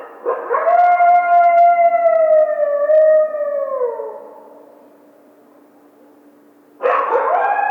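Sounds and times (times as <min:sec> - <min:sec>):
coyote howling: 0:00.4 - 0:05.0, 0:07.1 - 0:07.6.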